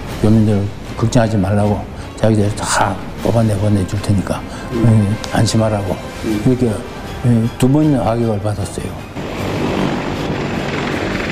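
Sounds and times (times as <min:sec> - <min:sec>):
speech: 0:00.2 - 0:09.1
helicopter rotor thumping with engine whine: 0:09.2 - 0:11.3.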